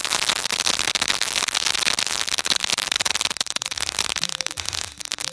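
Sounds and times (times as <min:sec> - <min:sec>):
field recordings played through speakers: 0:00.2 - 0:05.3
audio feedback through speakers and piezo microphones: 0:01.4 - 0:05.3
synth tones played through speakers: 0:02.4 - 0:05.3
nails, tacks and ball bearings in film tins on speakers: 0:03.6 - 0:05.3.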